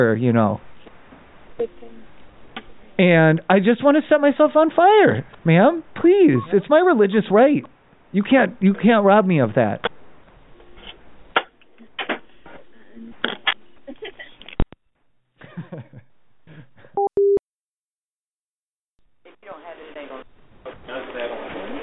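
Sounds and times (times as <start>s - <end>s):
speech: 0.0s - 0.7s, 1.6s - 1.8s, 3.0s - 9.9s, 15.6s - 16.0s
people talking over a thin phone line: 3.0s - 9.9s, 19.3s - 21.8s
electronic telephone tone: 17.0s - 17.4s.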